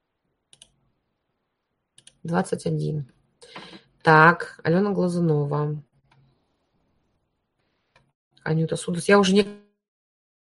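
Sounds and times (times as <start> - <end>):
computer keyboard typing: 0.5 - 0.8, 2.0 - 2.2
computer mouse clicks while scrolling pages: 0.5 - 0.8, 2.0 - 2.2
speech: 2.2 - 3.2, 4.0 - 5.9, 8.4 - 9.6.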